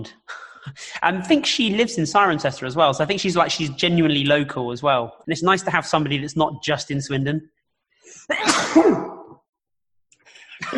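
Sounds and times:
speech: 0:00.0 - 0:09.2
person sneezing: 0:08.2 - 0:09.4.

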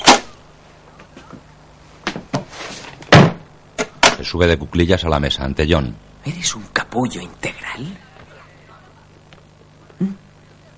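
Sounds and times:
cookie box being closed: 0:03.1 - 0:03.4
speech: 0:04.3 - 0:08.1, 0:10.0 - 0:10.2.

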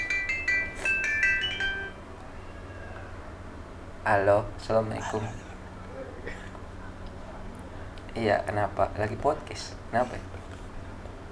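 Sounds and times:
phone ringing with an incoming call: 0:00.0 - 0:02.7
low hum: 0:00.0 - 0:11.3
speech: 0:04.0 - 0:05.5, 0:08.2 - 0:10.4
laughter: 0:04.9 - 0:07.0.

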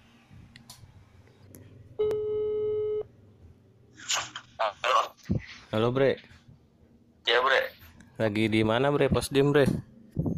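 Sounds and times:
low hum: 0:00.0 - 0:10.3
outgoing phone call ringing tone: 0:02.0 - 0:03.1
speech: 0:05.7 - 0:06.4, 0:08.2 - 0:09.9.

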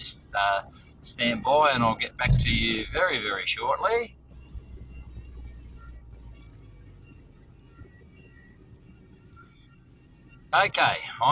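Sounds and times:
car driving through traffic heard from inside: 0:00.0 - 0:11.3
faint whining tones: 0:00.0 - 0:11.3
speech: 0:00.1 - 0:04.2, 0:10.5 - 0:11.3.

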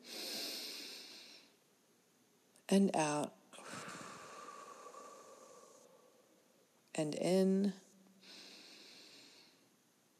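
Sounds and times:
deep breath in during a mindfulness breathing exercise: 0:00.0 - 0:01.6, 0:03.6 - 0:06.5, 0:08.2 - 0:09.7
speech: 0:02.7 - 0:03.4, 0:07.0 - 0:07.8.

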